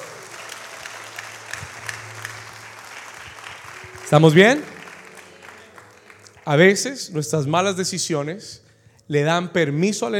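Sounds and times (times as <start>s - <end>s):
congregation applauding: 0.0s - 7.6s
speech: 4.1s - 4.7s, 6.4s - 10.1s.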